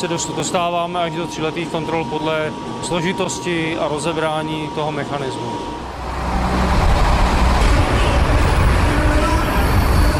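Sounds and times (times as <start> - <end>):
speech: 0.0 - 5.8
motorized universal rail vehicle engine droning and rolling in a metro tunnel: 5.5 - 10.1.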